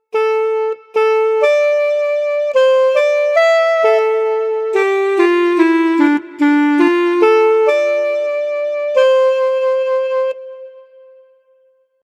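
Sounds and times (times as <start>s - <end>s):
clarinet fanfare: 0.0s - 11.4s.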